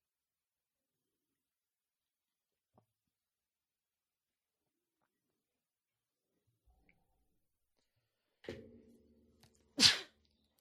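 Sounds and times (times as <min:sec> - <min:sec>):
sneeze: 0:09.8 - 0:10.2.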